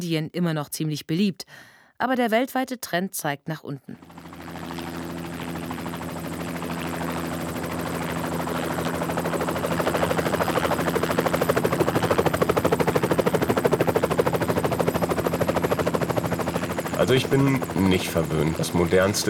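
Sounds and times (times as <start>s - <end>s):
speech: 0.0s - 4.3s, 17.0s - 19.2s
helicopter rotor beating in a rapid chop: 3.9s - 19.2s.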